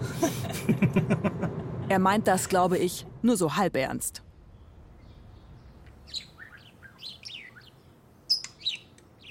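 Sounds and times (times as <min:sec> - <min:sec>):
laughter: 0:00.0 - 0:01.6
speech: 0:00.2 - 0:01.3, 0:01.9 - 0:04.3
budgerigars chirping and chattering: 0:06.0 - 0:09.2.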